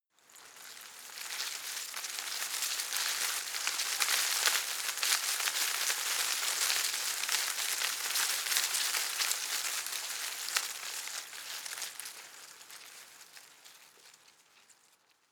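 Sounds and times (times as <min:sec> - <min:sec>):
small shrub leaves rustling heavily in a garden: 0:00.4 - 0:15.1.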